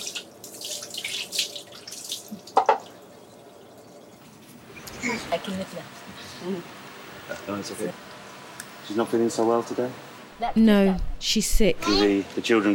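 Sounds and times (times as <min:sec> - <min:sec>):
water splashing and trickling while washing a sore on a child's back: 0:00.0 - 0:04.9
speech: 0:05.0 - 0:08.1, 0:08.9 - 0:12.7.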